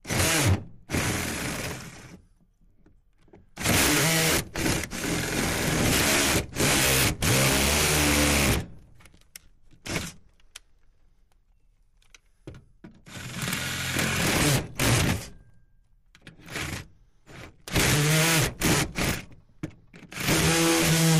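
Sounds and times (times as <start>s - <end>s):
hand drill machine drilling: 0.0s - 2.2s, 3.6s - 8.7s, 13.0s - 15.3s, 16.4s - 19.4s, 20.0s - 21.1s.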